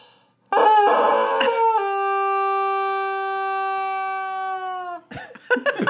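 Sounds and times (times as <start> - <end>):
large rubber chicken squeezed, prolonged squawk: 0.5 - 5.1.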